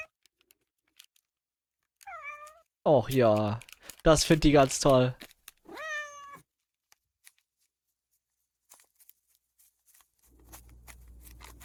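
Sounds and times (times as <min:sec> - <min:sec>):
cat meowing: 0:02.0 - 0:02.6, 0:05.7 - 0:06.4
speech: 0:02.8 - 0:05.3.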